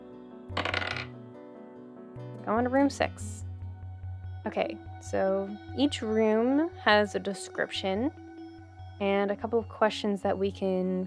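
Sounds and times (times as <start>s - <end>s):
small die clattering across a hard tabletop: 0.6s - 1.2s
speech: 2.4s - 3.4s, 4.4s - 8.2s, 9.0s - 11.0s.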